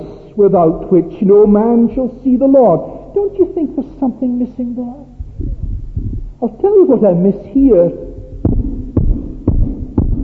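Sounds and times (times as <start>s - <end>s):
faint continuous hum: 0.0s - 10.2s
speech: 0.4s - 5.1s, 6.4s - 8.1s
heart beating: 5.1s - 6.6s, 7.6s - 10.2s.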